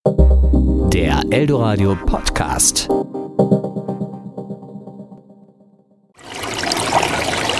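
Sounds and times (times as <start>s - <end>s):
short melodic tonal jingle: 0.2s - 3.9s
speech: 1.0s - 3.6s
water trickling and splashing: 6.2s - 7.5s.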